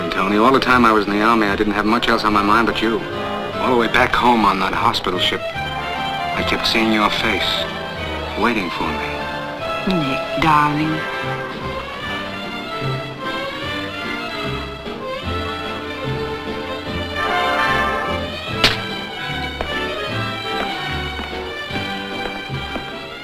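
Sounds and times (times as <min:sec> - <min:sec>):
speech: 0:00.2 - 0:05.6, 0:06.4 - 0:07.8, 0:08.4 - 0:09.1, 0:09.8 - 0:11.4
dramatic music: 0:01.6 - 0:23.2
sharp slap across the face: 0:18.6 - 0:19.1.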